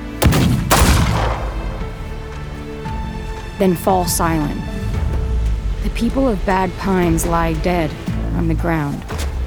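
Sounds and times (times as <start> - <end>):
gunfire in a town shootout: 0.2 - 2.0
speech: 3.6 - 4.8, 5.8 - 9.3.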